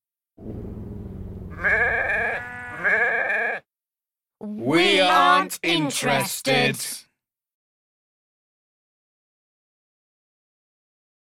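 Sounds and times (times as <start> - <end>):
sheep bleating: 1.5 - 3.7
speech: 4.7 - 7.0.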